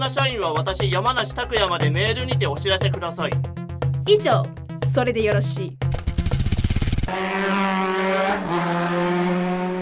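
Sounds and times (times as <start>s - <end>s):
speech: 0.0s - 6.0s, 7.1s - 9.0s
motorcycle engine revving as the bike accelerates away: 5.9s - 9.8s.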